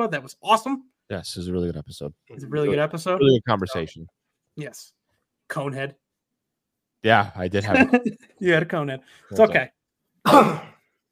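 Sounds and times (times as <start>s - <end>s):
speech: 0.0s - 6.0s, 7.0s - 10.7s
raspy cough or throat clear: 10.2s - 10.9s.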